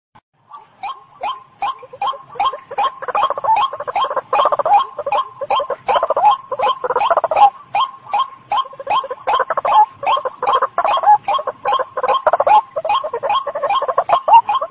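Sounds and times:
white-breasted waterhen giving short clipped croaks: 0:00.5 - 0:14.6.

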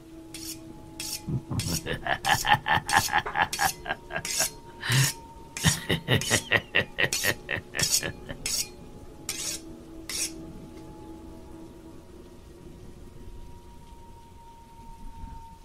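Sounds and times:
knife being sharpened on the bottom of a small bowl: 0:00.3 - 0:01.9, 0:02.9 - 0:06.4, 0:07.1 - 0:10.4
laughter: 0:01.3 - 0:08.4.

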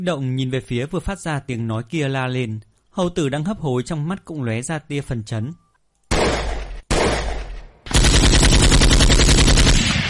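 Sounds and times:
speech: 0:00.0 - 0:05.6
gun firing continuously in bursts: 0:06.1 - 0:10.0.

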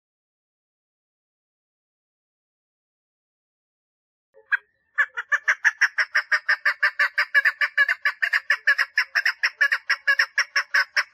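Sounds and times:
partridge giving harsh grating calls: 0:04.4 - 0:11.1.

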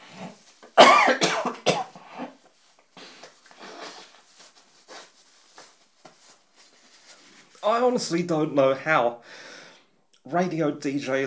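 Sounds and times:
soft rustling: 0:00.0 - 0:08.4
person clearing throat: 0:00.8 - 0:02.4
speech: 0:07.9 - 0:09.5, 0:10.3 - 0:11.2.

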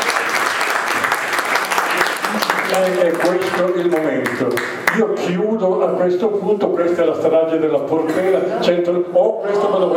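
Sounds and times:
audience applauding a survivor at the close of a talk: 0:00.0 - 0:05.0
speech: 0:02.8 - 0:09.9.

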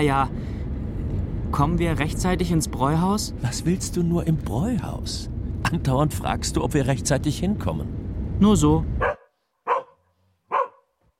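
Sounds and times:
speech: 0:00.0 - 0:00.6, 0:01.5 - 0:09.0
stray dog barking: 0:09.0 - 0:11.0.

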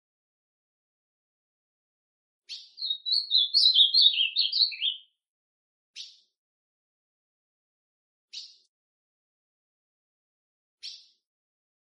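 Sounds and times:
ultramarine grosbeak warbling song: 0:02.5 - 0:05.0
ultramarine grosbeak sharp call notes: 0:02.8 - 0:05.0.

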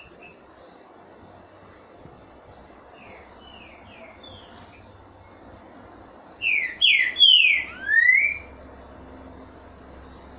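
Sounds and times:
Green-winged Saltator singing mellow whistled notes, Boiadeiro song type: 0:06.4 - 0:09.4.

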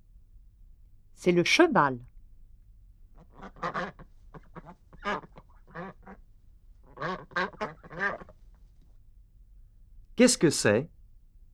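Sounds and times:
speech: 0:01.2 - 0:02.1, 0:10.2 - 0:11.0
duck quacking: 0:03.2 - 0:06.2, 0:06.9 - 0:08.4.

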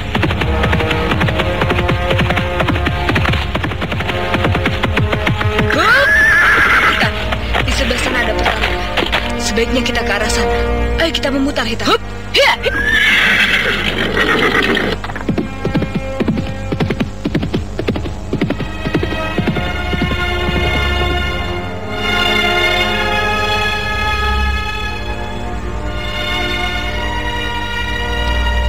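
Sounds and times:
black horse galloping: 0:00.0 - 0:10.6, 0:12.7 - 0:23.2
loud steady droning hum: 0:00.0 - 0:28.6
black horse neighing: 0:05.7 - 0:07.2, 0:12.4 - 0:15.2
speech: 0:11.1 - 0:12.1.

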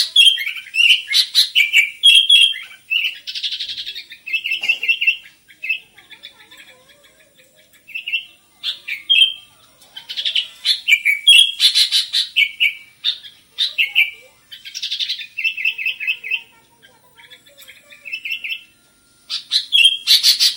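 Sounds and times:
Sooty-headed bulbul singing whistled and chattering phrases: 0:00.0 - 0:05.8, 0:07.9 - 0:09.5, 0:10.7 - 0:16.5, 0:18.0 - 0:20.5.

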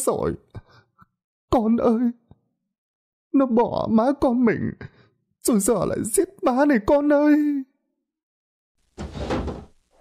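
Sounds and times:
speech: 0:00.0 - 0:00.6, 0:01.5 - 0:02.2, 0:03.3 - 0:07.7
two windows flung open by fierce wind and smashing: 0:09.0 - 0:09.9.

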